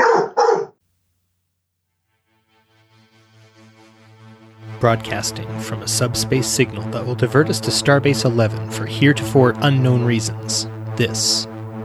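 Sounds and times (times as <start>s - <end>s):
dog barking: 0.0s - 0.8s
speech: 4.8s - 11.6s.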